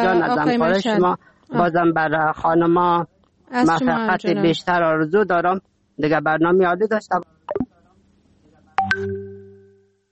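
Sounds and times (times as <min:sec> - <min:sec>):
faint talk: 0:00.0 - 0:01.9, 0:03.5 - 0:04.7
speech: 0:00.0 - 0:07.6
electronic phone line tone as a call is cut off: 0:08.8 - 0:10.0.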